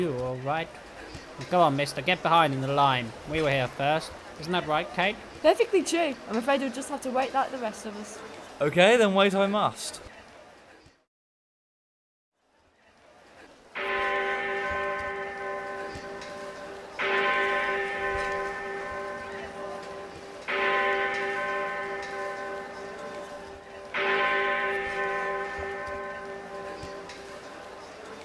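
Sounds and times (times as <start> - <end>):
speech: 0.0 - 10.1
clock striking the hour with deep bell tones: 13.8 - 28.2.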